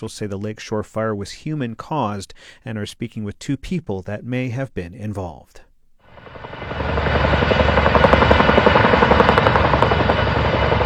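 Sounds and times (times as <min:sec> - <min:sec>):
speech: 0:00.0 - 0:06.4
helicopter rotor chop while pulling water from a reservoir: 0:06.1 - 0:10.8.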